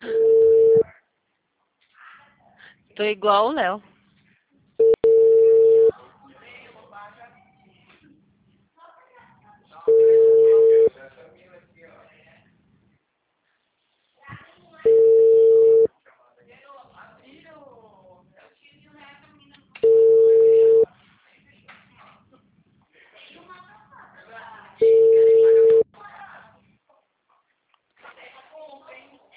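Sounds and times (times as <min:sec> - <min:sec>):
ringback tone on an outgoing phone call: 0:00.0 - 0:00.9, 0:04.8 - 0:05.9, 0:09.9 - 0:10.9, 0:14.9 - 0:15.9, 0:19.8 - 0:20.8, 0:24.8 - 0:25.8
speech: 0:03.0 - 0:03.9.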